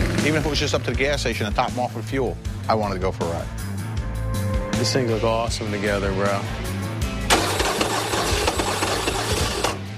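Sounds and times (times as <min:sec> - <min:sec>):
speech: 0:00.2 - 0:03.7, 0:04.8 - 0:06.7
motorcycle engine cranking on a nearly dead battery: 0:07.3 - 0:09.8.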